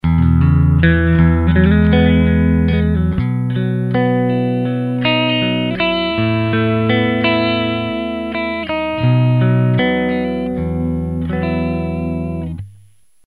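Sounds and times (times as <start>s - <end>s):
guitar amplifier: 0.0s - 13.2s.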